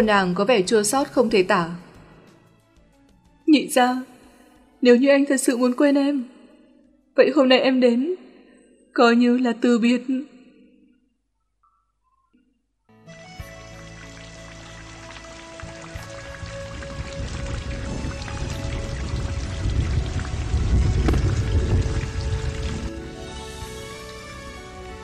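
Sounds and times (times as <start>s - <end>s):
speech: 0.0s - 1.8s, 3.5s - 4.1s, 4.8s - 6.3s, 7.2s - 8.2s, 9.0s - 10.3s
pouring rain: 13.1s - 25.0s
gusting wind: 16.7s - 23.0s.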